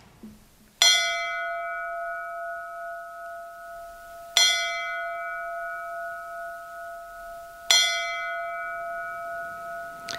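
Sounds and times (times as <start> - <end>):
church bell striking: 0.8 - 10.1.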